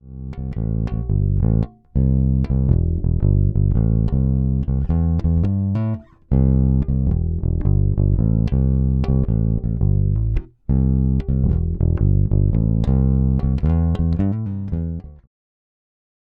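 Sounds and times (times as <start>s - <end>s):
Fodera NYC Empire Jazz bass through neck pickup: 0.0s - 15.3s.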